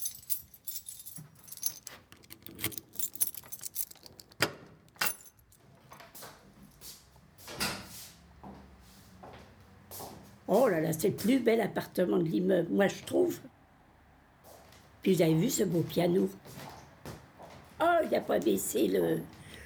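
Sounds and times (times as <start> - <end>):
keys jangling in an upside-down apartment door lock: 0.0 - 5.6
speech: 10.5 - 13.5, 15.0 - 16.6, 18.1 - 19.4.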